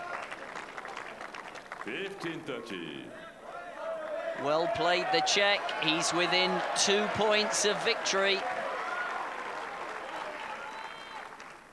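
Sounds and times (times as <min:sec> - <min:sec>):
large tennis crowd clapping during a match: 0:00.0 - 0:02.6, 0:04.0 - 0:11.7
large tennis crowd cheering during a match: 0:00.0 - 0:11.7
speech: 0:01.8 - 0:03.3, 0:04.4 - 0:08.6
whistles from tennis crowd: 0:10.5 - 0:11.4.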